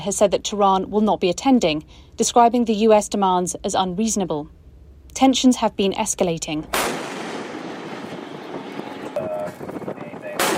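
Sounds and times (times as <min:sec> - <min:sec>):
speech: 0:00.0 - 0:04.6, 0:05.2 - 0:07.2
continuous rumbling noise: 0:00.0 - 0:10.5
US military ship guns firing at a cargo vessel: 0:06.7 - 0:09.2, 0:10.2 - 0:10.5.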